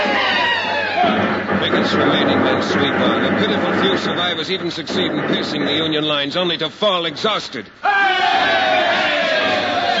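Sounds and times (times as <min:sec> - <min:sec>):
many soldiers cheering and shouting: 0:00.0 - 0:01.4, 0:07.8 - 0:09.9
speech: 0:01.9 - 0:09.1.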